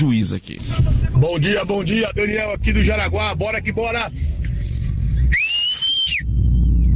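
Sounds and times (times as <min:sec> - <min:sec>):
speech: 0:00.0 - 0:04.4
low rumble: 0:00.0 - 0:06.9
loud piercing human whistle with echo: 0:05.3 - 0:06.9.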